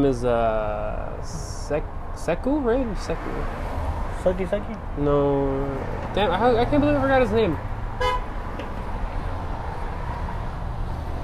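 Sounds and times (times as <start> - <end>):
speech: 0.0 - 7.7
steady rumble of street noise: 0.0 - 11.2
car horn toot outside: 8.0 - 8.3.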